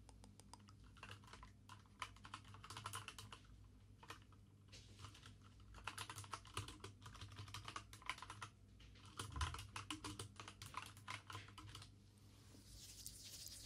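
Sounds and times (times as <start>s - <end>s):
quick typing on a clicky computer keyboard: 0.5s - 4.4s, 5.0s - 11.9s.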